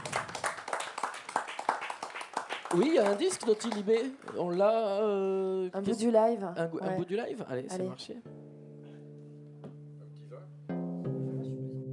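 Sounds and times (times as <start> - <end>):
audience applauding at a live show: 0.0 - 4.8
speech: 2.7 - 8.4.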